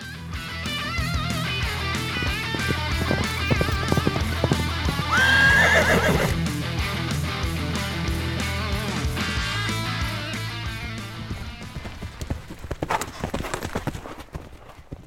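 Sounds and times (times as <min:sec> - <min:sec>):
horse hooves clip-clopping: 0:00.6 - 0:07.4, 0:08.5 - 0:15.0
horse neighing: 0:01.7 - 0:06.4.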